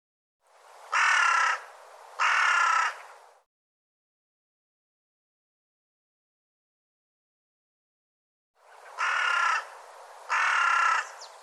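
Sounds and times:
bird harsh raspy caws: 0:00.9 - 0:03.2, 0:08.7 - 0:11.4.

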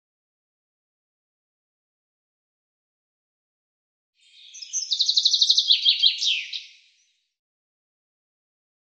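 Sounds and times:
common chaffinch singing: 0:04.2 - 0:07.2.

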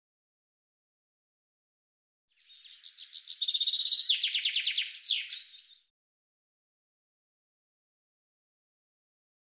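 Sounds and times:
common chaffinch singing: 0:02.4 - 0:05.9.

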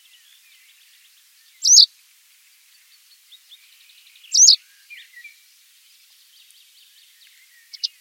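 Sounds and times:
white wagtail calls: 0:01.6 - 0:01.9, 0:04.3 - 0:04.6, 0:07.6 - 0:07.9.

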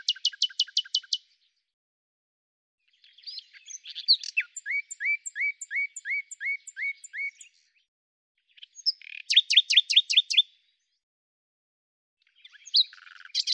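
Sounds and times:
common nightingale singing: 0:00.0 - 0:01.3, 0:03.0 - 0:07.8, 0:08.6 - 0:10.5, 0:12.3 - 0:13.5.

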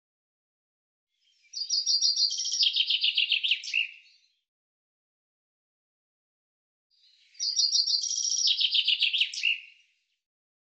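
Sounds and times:
common chaffinch song with rattling cascade of notes: 0:01.2 - 0:04.5, 0:06.9 - 0:10.2.

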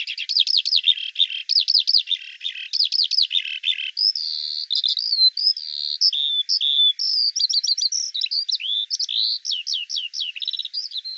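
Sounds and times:
Eurasian skylark singing: 0:00.0 - 0:11.1.

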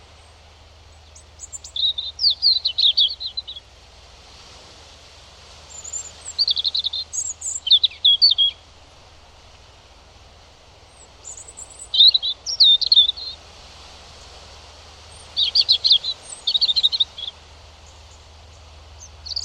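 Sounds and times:
European robin singing fluty tinkling phrases: 0:00.2 - 0:03.7, 0:05.7 - 0:08.7, 0:10.8 - 0:13.4, 0:15.1 - 0:19.4.

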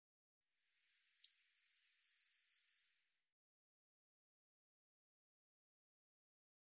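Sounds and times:
Eurasian blue tit singing high notes and a falling trill: 0:00.9 - 0:02.8.

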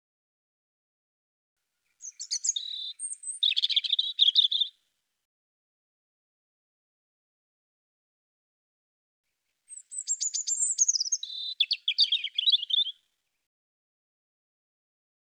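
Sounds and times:
European robin singing: 0:01.8 - 0:04.8, 0:09.7 - 0:13.4.

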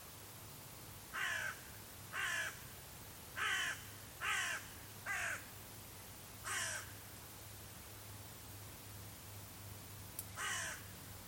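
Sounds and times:
low steady hum: 0:00.0 - 0:11.2
bird cawing: 0:01.1 - 0:02.6, 0:03.4 - 0:05.5, 0:06.4 - 0:07.0, 0:10.4 - 0:10.9.

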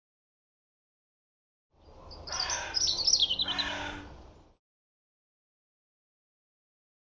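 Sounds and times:
European robin song: 0:01.8 - 0:04.1.

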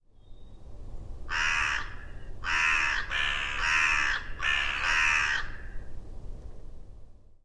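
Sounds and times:
bird giving harsh hoarse cawing calls: 0:01.3 - 0:05.9.

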